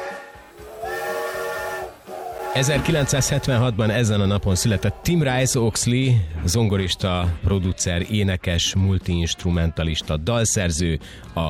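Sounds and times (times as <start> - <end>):
steam locomotive whistle: 0.0 - 3.7
speech: 2.6 - 11.4.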